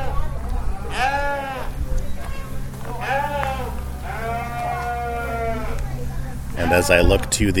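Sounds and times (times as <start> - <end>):
steady low rumble of wind: 0.0 - 7.5
sheep bleating at a rodeo: 0.9 - 1.8, 2.9 - 5.9
speech: 6.7 - 7.5.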